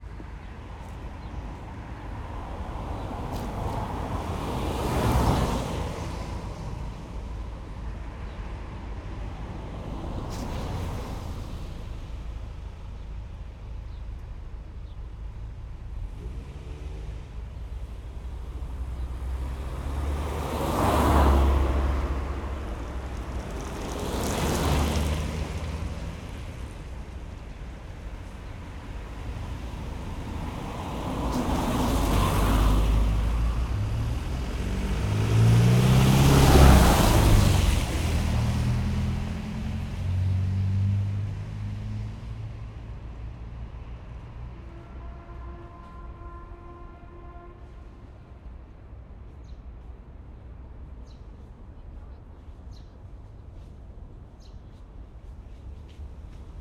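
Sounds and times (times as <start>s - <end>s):
daytime summer street traffic in Moscow: 0.0s - 56.5s
car passing on a narrow street: 1.8s - 7.4s, 16.0s - 43.0s.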